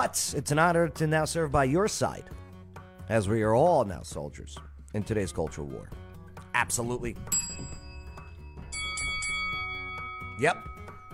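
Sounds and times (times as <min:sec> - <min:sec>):
speech: 0:00.0 - 0:02.4, 0:03.1 - 0:06.0, 0:06.6 - 0:07.7, 0:10.4 - 0:10.7
notification bell chiming: 0:07.3 - 0:11.1.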